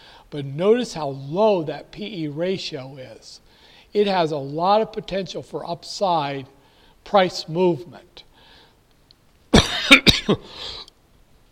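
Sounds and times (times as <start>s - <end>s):
speech: 0.3s - 8.2s, 9.9s - 10.8s
harsh coughing: 9.5s - 10.9s.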